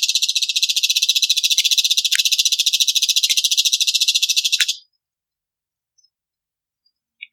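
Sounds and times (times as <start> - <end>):
yellow-chevroned parakeet singing: 0.2 - 4.7.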